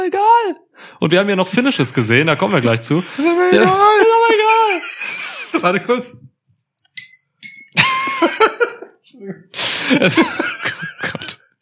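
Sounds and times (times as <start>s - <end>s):
speech: 0.0s - 4.2s, 5.6s - 6.3s, 9.2s - 11.2s
people laughing: 1.6s - 6.1s, 7.8s - 9.0s, 9.8s - 11.5s
glass bottle clinking against a drinking glass: 6.9s - 7.8s.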